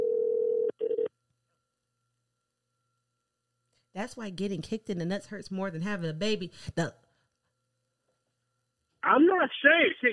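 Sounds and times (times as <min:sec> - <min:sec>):
telephone dial tone on a regular phone line as a call is placed: 0:00.0 - 0:01.1
speech: 0:04.0 - 0:07.0, 0:09.6 - 0:10.1.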